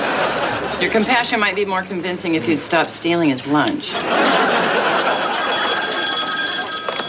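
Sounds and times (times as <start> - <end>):
laughter: 0.0 - 1.6, 3.8 - 7.0
speech: 0.8 - 4.9
telephone bell ringing at a diner: 4.2 - 7.0.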